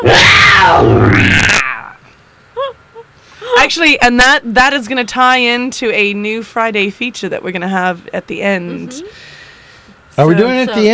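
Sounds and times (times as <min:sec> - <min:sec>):
person letting out a throaty mock roar: 0:00.0 - 0:02.0
speech: 0:03.7 - 0:09.3, 0:10.2 - 0:10.9.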